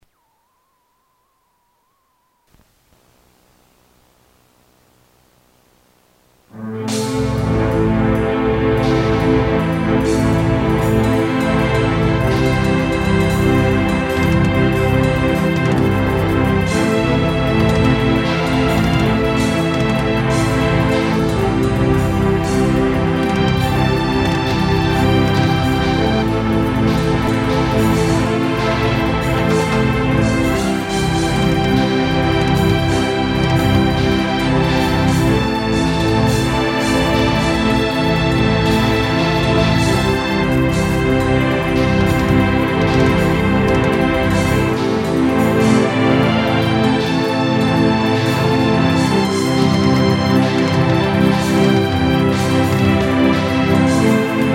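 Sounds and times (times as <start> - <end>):
strings: 6.6 - 54.5.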